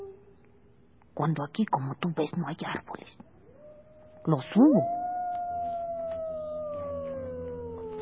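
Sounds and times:
speech: 1.2 - 3.4, 4.2 - 5.0
dogs howling in a village: 3.4 - 8.0.

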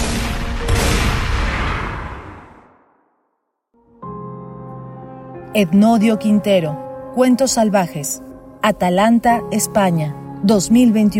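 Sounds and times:
music: 0.0 - 1.4, 3.7 - 11.1
shotgun blasts: 0.0 - 2.8
speech: 5.5 - 11.1.

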